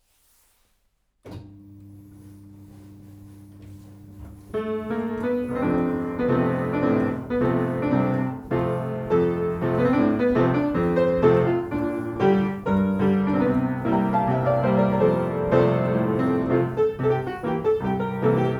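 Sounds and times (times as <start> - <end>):
1920 player piano from Germany: 4.1 - 18.5.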